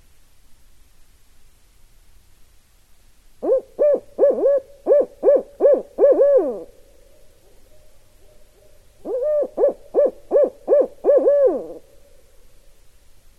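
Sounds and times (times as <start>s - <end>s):
barred owl hooting in rhythmic runs ending in a slur: 3.4s - 12.5s.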